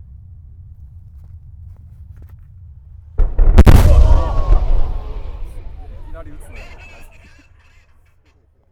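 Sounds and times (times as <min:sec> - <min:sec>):
military attack: 0:03.2 - 0:07.3.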